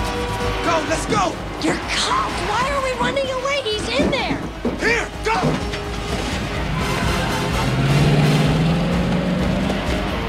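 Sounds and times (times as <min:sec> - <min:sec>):
rumbling road noise: 0:00.0 - 0:10.2
speech: 0:00.7 - 0:05.6
heavy vehicle engine revving and accelerating: 0:06.0 - 0:10.2.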